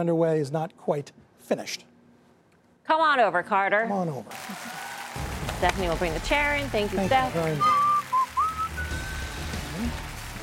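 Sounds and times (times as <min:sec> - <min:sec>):
speech: 0:00.0 - 0:01.9, 0:02.9 - 0:04.8, 0:05.6 - 0:07.8
person whistling a catchy song tune: 0:07.5 - 0:09.6.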